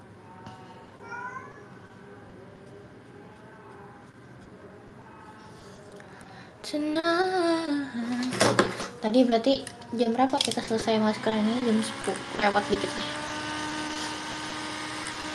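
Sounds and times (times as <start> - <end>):
steady noise: 0.0 - 10.6
agitated cat meowing while demanding food: 1.0 - 1.7
speech: 6.7 - 8.2, 9.0 - 13.2.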